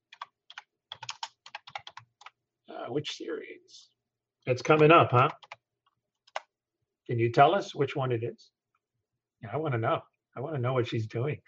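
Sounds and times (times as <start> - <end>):
typing on a computer keyboard: 0.0 - 2.4, 4.6 - 5.6, 6.2 - 6.5
speech: 2.9 - 5.6, 7.1 - 8.6, 9.4 - 11.4.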